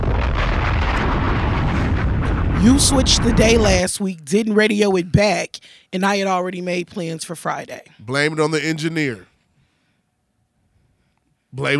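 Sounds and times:
bomb explosion sound effect: 0.0s - 3.9s
speech: 2.6s - 9.3s, 11.5s - 11.7s.

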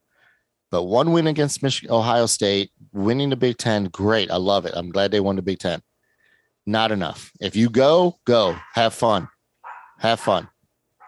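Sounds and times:
speech: 0.7s - 5.9s, 6.6s - 9.3s, 10.0s - 10.5s
dog barking: 8.4s - 11.0s.

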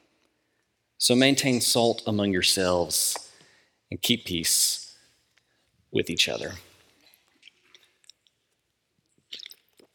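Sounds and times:
speech: 1.0s - 3.2s, 3.9s - 4.8s, 5.9s - 6.7s
person sipping water: 7.0s - 9.9s.

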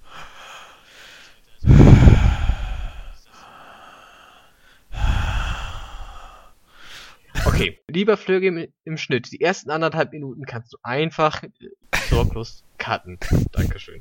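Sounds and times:
breathy gusts of air blown into a microphone: 0.0s - 4.3s, 4.9s - 7.2s
speech: 7.6s - 14.0s.

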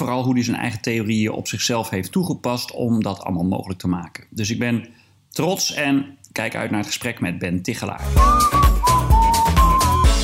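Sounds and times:
speech: 0.1s - 8.6s
backing track with a regular thumping low beat: 8.1s - 10.2s
person whistling a melody: 8.2s - 10.2s.

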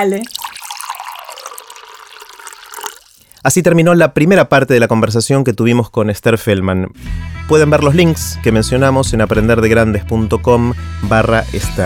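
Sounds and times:
speech: 0.0s - 0.4s, 3.4s - 11.8s
drinking water poured into a glass: 0.0s - 3.6s.

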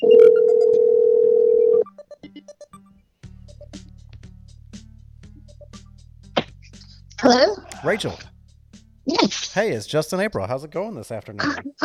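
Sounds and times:
telephone dial tone: 0.0s - 2.0s
phone keypad beeps: 0.0s - 2.9s
outgoing call phone ringing tone: 0.0s - 3.0s
speech: 7.2s - 8.3s, 9.2s - 11.8s.

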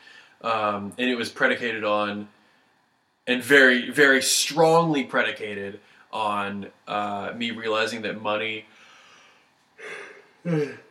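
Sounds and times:
speech: 0.4s - 2.4s, 3.3s - 8.8s, 9.8s - 10.8s
person yawning: 9.8s - 10.9s.

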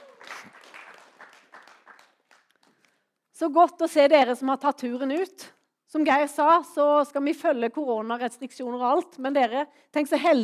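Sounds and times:
audience applause: 0.0s - 3.0s
speech: 3.4s - 10.4s.

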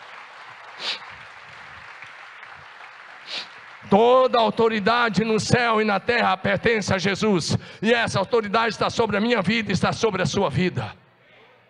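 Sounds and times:
large crowd clapping: 0.0s - 5.8s
speech: 3.9s - 11.0s.

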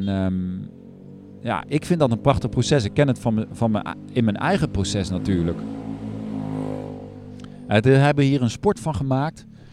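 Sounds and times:
speech: 0.0s - 0.8s, 1.4s - 5.8s, 7.7s - 9.5s
scooter with a loud exhaust revving: 0.7s - 7.6s.

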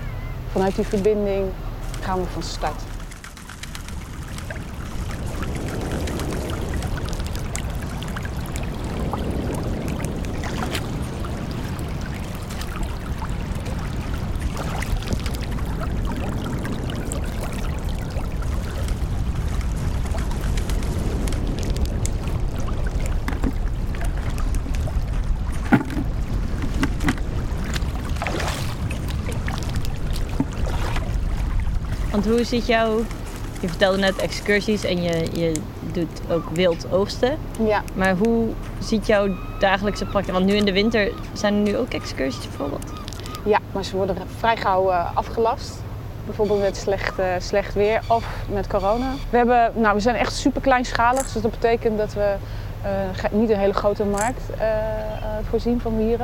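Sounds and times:
sea water lapping and sloshing: 0.0s - 56.2s
speech: 0.5s - 2.9s, 32.3s - 56.2s.

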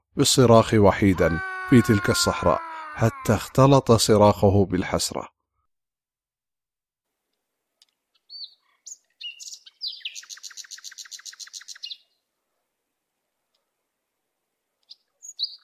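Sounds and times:
speech: 0.2s - 5.4s
small birds chirping in the late afternoon returning to their nests: 7.8s - 12.2s, 14.8s - 15.6s.

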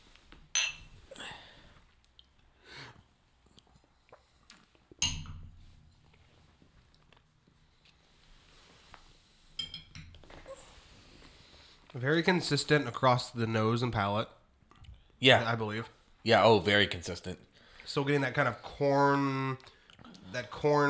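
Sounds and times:
glasses clinking in a toast during a spirits tasting: 0.5s - 1.0s, 5.0s - 5.6s, 9.6s - 10.5s
speech: 12.0s - 14.4s, 15.2s - 20.8s.

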